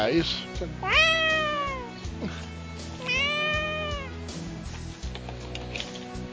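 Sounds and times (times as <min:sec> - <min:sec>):
speech: 0:00.0 - 0:01.2, 0:02.2 - 0:02.9
upset cat yowling in a bedroom: 0:00.8 - 0:01.9, 0:03.0 - 0:04.2.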